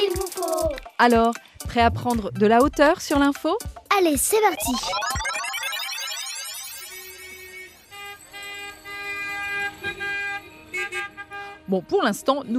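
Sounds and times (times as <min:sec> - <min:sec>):
speech: 0:01.0 - 0:05.2, 0:11.7 - 0:12.5
many car horns honking in traffic: 0:07.9 - 0:11.8.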